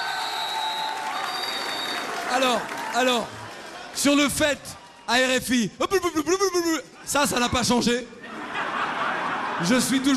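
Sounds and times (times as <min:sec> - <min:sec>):
audience applauding a man: 0:00.0 - 0:05.0
speech: 0:02.3 - 0:03.4, 0:04.0 - 0:08.2, 0:09.6 - 0:10.1
laughter: 0:08.1 - 0:10.1.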